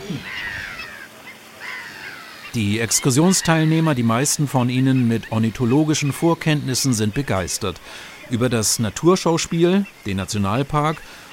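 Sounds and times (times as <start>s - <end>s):
harsh crow-like cawing: 0.0s - 3.9s
birds calling in alarm as a harrier flies over: 0.0s - 11.3s
speech: 0.1s - 0.6s, 2.5s - 11.2s.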